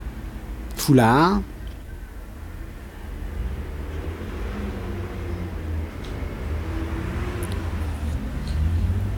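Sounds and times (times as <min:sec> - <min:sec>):
steady street traffic rumbling: 0:00.0 - 0:09.1
vans passing: 0:00.0 - 0:09.1
speech: 0:00.8 - 0:01.5
rental truck droning: 0:02.4 - 0:09.1
cars, taxi and driving-school car passing: 0:02.5 - 0:09.1.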